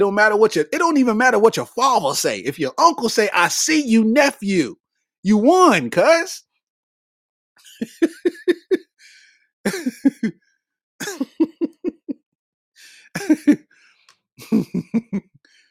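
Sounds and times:
speech: 0.0s - 6.5s, 7.8s - 8.8s, 9.6s - 10.4s, 13.2s - 13.7s, 14.4s - 15.3s
laughter: 7.6s - 9.0s, 9.7s - 10.3s, 11.0s - 12.2s, 13.1s - 13.6s, 14.4s - 15.3s
coughing into the elbow: 11.0s - 11.4s, 13.2s - 13.6s.

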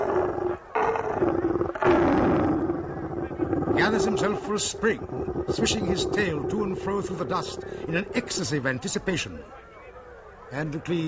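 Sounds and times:
lion roaring: 0.0s - 8.6s
speech: 4.0s - 9.6s, 10.5s - 11.0s.

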